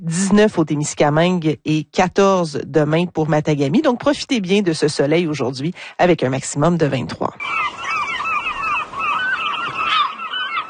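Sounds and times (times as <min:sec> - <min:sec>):
speech: 0:00.1 - 0:07.8
gull calls: 0:07.4 - 0:10.6.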